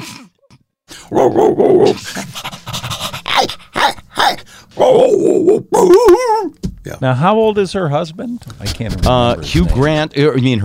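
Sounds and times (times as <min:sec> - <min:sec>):
person imitating dogs growling and snarling: 0:00.0 - 0:02.0, 0:03.3 - 0:06.6
person imitating dogs barking and panting: 0:01.1 - 0:02.0, 0:03.3 - 0:06.6
speech: 0:01.2 - 0:02.4, 0:05.5 - 0:10.6.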